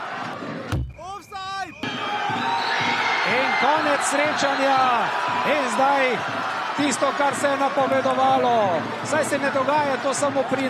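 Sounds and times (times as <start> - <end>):
football crowd roaring after equalizing goal: 0.0 - 10.6
heavy thump: 0.7 - 1.9
speech: 3.6 - 10.6.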